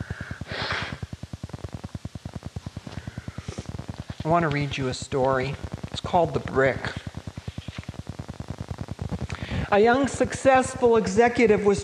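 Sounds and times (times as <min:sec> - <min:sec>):
short forceful nose blow: 0:00.4 - 0:01.0
speech: 0:04.2 - 0:07.0, 0:09.7 - 0:11.8.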